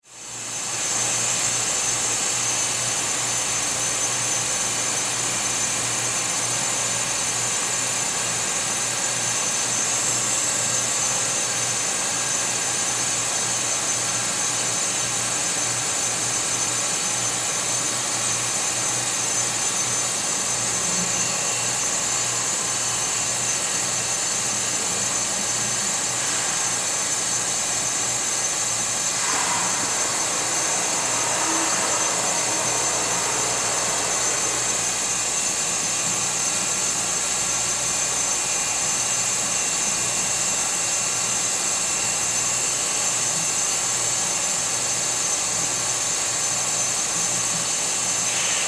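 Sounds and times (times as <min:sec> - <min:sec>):
factory water filtration room ambience: 0:00.0 - 0:48.6.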